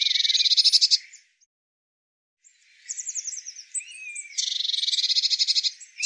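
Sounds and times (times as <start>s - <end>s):
Eurasian blue tit calls: 0.0s - 1.3s, 2.8s - 6.0s.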